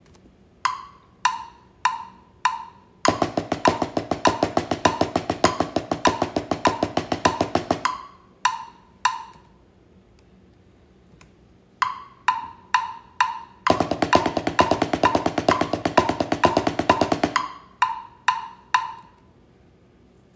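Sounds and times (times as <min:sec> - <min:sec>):
drum double stroke roll: 0:00.6 - 0:09.2, 0:11.8 - 0:19.0.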